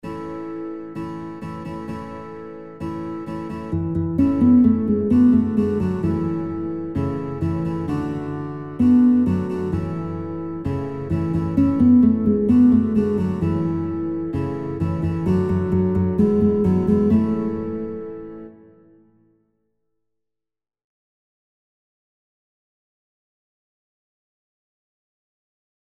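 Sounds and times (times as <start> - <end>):
guitar playing a folk tune: 0.0 - 19.2.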